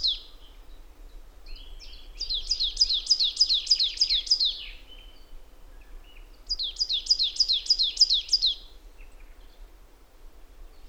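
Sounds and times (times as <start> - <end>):
Poecile palustris marsh tit calling high sharp down-swept notes: 1.8 - 4.8, 6.5 - 8.6.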